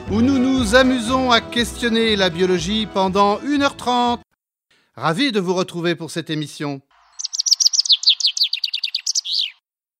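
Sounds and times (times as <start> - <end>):
speech: 0.1 - 4.2, 5.0 - 6.9
chaffinch singing: 7.0 - 9.6.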